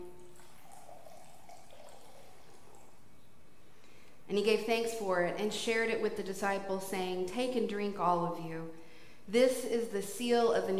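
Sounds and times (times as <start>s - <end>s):
wine trickling into a cup: 0.0s - 3.4s
speech: 4.3s - 10.7s.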